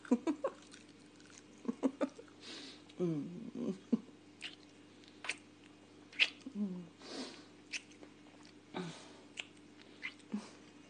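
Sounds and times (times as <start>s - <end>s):
low steady hum: 0.0s - 10.8s
wet chewing and smacking of smoked bacon: 0.4s - 2.4s, 4.4s - 6.5s, 7.6s - 8.7s, 9.3s - 10.8s.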